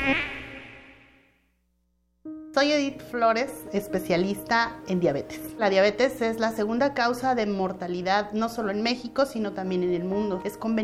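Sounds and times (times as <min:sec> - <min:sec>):
mosquito buzzing: 0:00.0 - 0:01.4
speech: 0:02.6 - 0:10.8.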